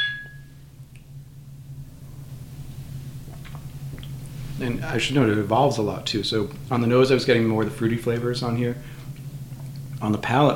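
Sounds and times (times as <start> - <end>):
glasses clinking in a toast: 0.0 - 0.5
low steady hum: 0.0 - 10.5
speech: 4.6 - 9.0, 10.0 - 10.5.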